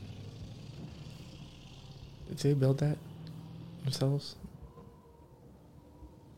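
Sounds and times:
truck engine running with a low rumbling drone: 0:00.0 - 0:04.7
speech: 0:02.3 - 0:03.1, 0:03.9 - 0:04.5.

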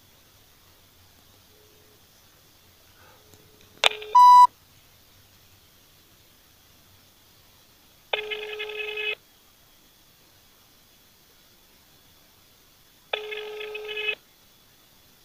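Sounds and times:
unanswered telephone ringing: 0:03.9 - 0:04.5, 0:08.2 - 0:09.2, 0:13.2 - 0:14.2.

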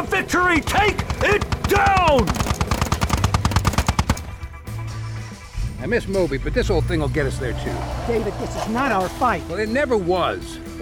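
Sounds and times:
speech: 0:00.0 - 0:02.7, 0:05.8 - 0:10.8
chain gun firing in a video game: 0:01.1 - 0:04.6.

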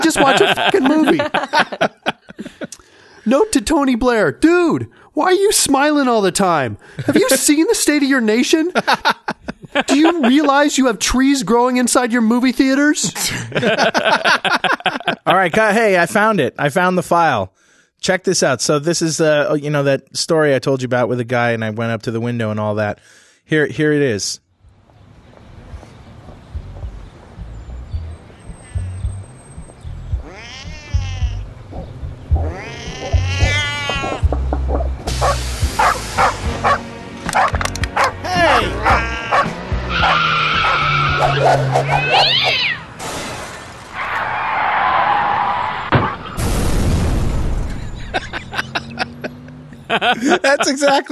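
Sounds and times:
laughter: 0:00.0 - 0:02.8, 0:06.9 - 0:07.5, 0:08.5 - 0:10.8, 0:13.0 - 0:15.6, 0:38.3 - 0:39.2, 0:47.7 - 0:51.0
speech: 0:00.0 - 0:24.4, 0:50.0 - 0:51.0
cat yowling: 0:30.2 - 0:31.4, 0:32.4 - 0:34.3, 0:38.0 - 0:42.9
animals barking: 0:30.2 - 0:42.9
car tires screeching in a skid: 0:39.8 - 0:46.4
car crashing into a pole: 0:42.9 - 0:49.2
electrical transformer explosion caused by a car hitting a pole: 0:43.0 - 0:44.0, 0:45.8 - 0:48.3.

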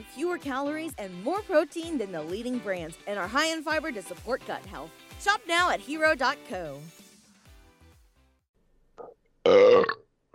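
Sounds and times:
speech: 0:00.0 - 0:07.0, 0:09.5 - 0:10.0
faint gulp: 0:09.0 - 0:10.3
loud drawn-out resonant burp: 0:09.0 - 0:10.3.

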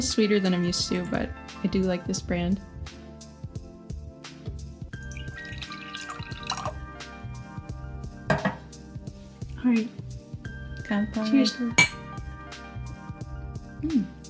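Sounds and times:
speech: 0:00.0 - 0:03.0, 0:09.7 - 0:10.0, 0:10.9 - 0:11.8, 0:13.8 - 0:14.2
canned double espresso with milk and sugar poured into a glass: 0:05.0 - 0:07.0.

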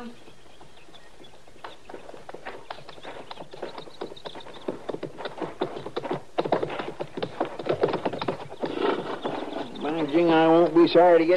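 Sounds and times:
speech: 0:00.0 - 0:00.3, 0:10.1 - 0:11.3
horses' hooves clip-clopping on hard ground as they are led: 0:00.0 - 0:11.3
horse whinny: 0:08.6 - 0:09.8.

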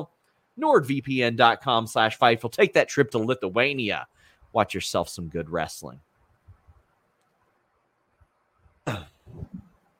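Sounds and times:
speech: 0:00.0 - 0:06.1, 0:08.8 - 0:09.5
person coughing: 0:08.8 - 0:09.6
throat-clearing: 0:08.8 - 0:09.7.

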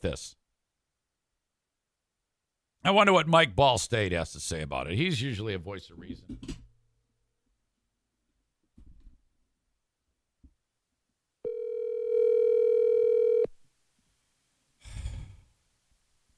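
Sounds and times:
speech: 0:00.0 - 0:00.4, 0:02.8 - 0:06.6
steady electronic phone line ringing tone: 0:11.4 - 0:13.5
soft breathy sighs: 0:14.8 - 0:15.6.

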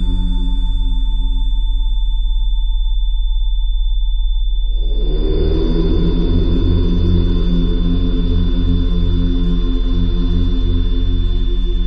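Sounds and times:
steady pure high tone at 3520 Hz: 0:00.0 - 0:08.3
constant low hum: 0:00.0 - 0:11.8
dense rumbling low drone: 0:00.0 - 0:11.8.

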